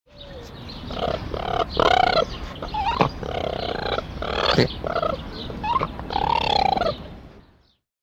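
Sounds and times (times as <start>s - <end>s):
raccoon calling: 0.1s - 7.1s.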